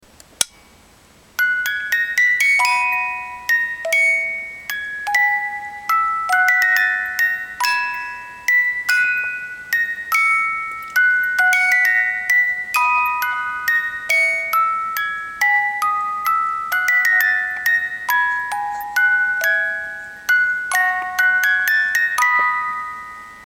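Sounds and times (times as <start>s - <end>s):
Swiss paperweight music box with 18-note comb playing a waltz: 0.4s - 23.4s.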